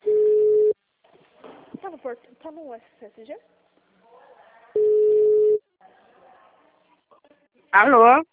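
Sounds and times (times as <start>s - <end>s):
phone busy tone after a dropped call: 0.0s - 0.8s, 4.8s - 5.6s
speech: 2.1s - 3.6s, 7.7s - 8.3s.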